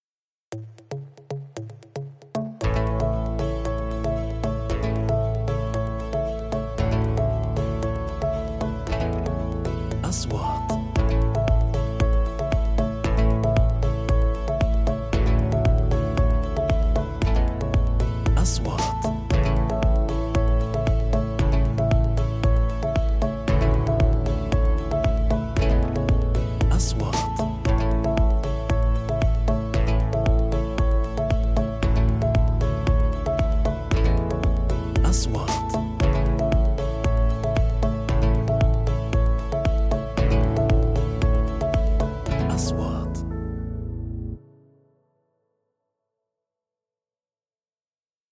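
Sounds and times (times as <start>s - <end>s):
corporate music: 0.5s - 44.8s.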